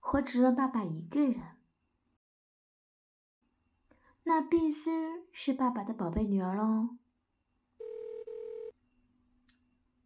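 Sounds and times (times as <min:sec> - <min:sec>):
speech: 0:00.1 - 0:01.6, 0:04.2 - 0:07.0
telephone ringing with a mid-pitched electronic tone: 0:07.8 - 0:08.8.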